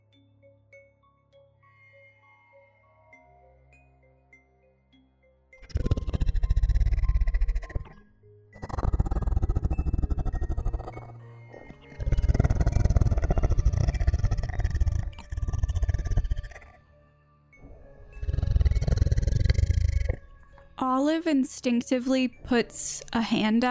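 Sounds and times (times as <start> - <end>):
deep guttural growl with heavy bass: 5.6 - 8.0, 8.6 - 16.8, 17.6 - 20.2
speech: 21.0 - 23.6.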